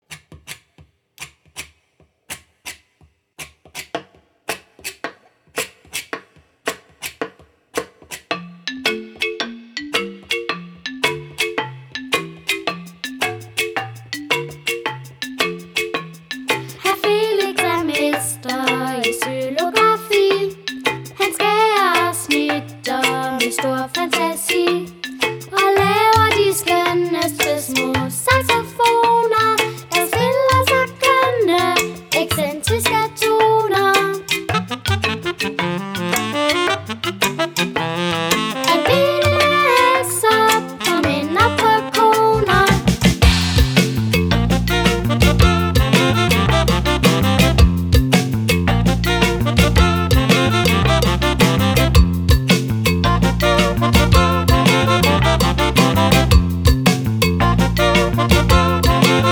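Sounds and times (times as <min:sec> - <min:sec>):
xylophone: 0:08.3 - 0:59.3
saxophone: 0:34.5 - 0:59.3.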